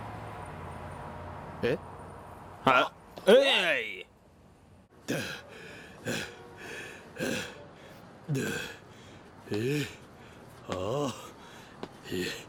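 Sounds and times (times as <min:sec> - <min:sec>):
speech: 0:01.6 - 0:01.9, 0:02.6 - 0:03.6
heavy voiced panting breath: 0:05.1 - 0:12.4.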